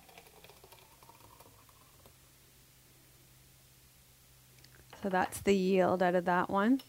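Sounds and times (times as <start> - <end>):
foamy juice from a juicer poured into a glass: 0.0 - 2.2
hiss: 0.0 - 6.8
speech: 5.0 - 6.8.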